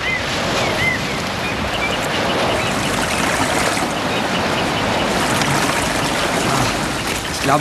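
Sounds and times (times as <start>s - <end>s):
water pumped into a deep tarp-lined pit rushing and splashing: 0.0s - 7.5s.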